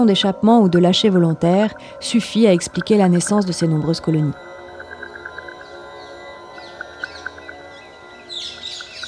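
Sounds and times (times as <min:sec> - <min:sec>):
speech: 0:00.0 - 0:04.5
outdoor noise: 0:00.0 - 0:09.0
flock of ring-necked parakeets calling: 0:01.8 - 0:09.0.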